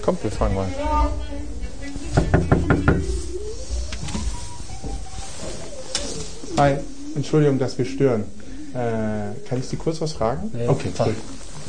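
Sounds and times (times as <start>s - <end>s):
speech: 0.0s - 2.8s, 6.6s - 11.6s
firm knocks on an inner door: 2.1s - 3.2s.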